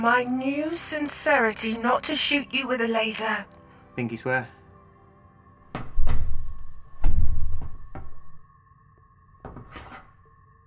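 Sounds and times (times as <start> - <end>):
speech: 0.0 - 4.6
stuck wooden cupboard door being pushed and jolted: 5.8 - 8.2.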